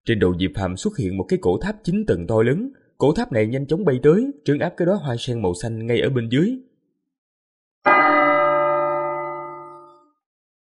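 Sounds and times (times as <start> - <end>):
speech: 0.0 - 6.7
large bell ringing with a deep metallic tone: 7.9 - 10.1.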